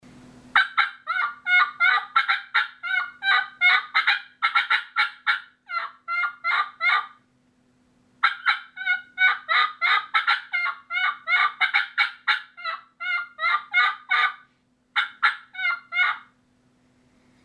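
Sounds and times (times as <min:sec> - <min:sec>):
excited turkey hen yelping and cutting: 0:00.6 - 0:07.2, 0:08.2 - 0:16.4.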